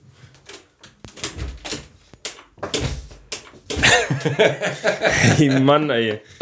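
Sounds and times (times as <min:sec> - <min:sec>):
sharp knocks and clattering thumps: 0:00.4 - 0:04.6
door being shut: 0:01.1 - 0:04.3
laughter: 0:03.8 - 0:05.8
speech: 0:04.2 - 0:06.4.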